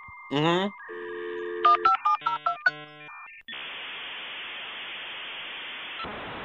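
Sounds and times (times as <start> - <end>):
dial-up modem touch-tone beeps: 0.0 - 3.4
dial-up modem dial tone: 0.8 - 3.3
dial-up modem harsh static hiss: 3.5 - 6.4.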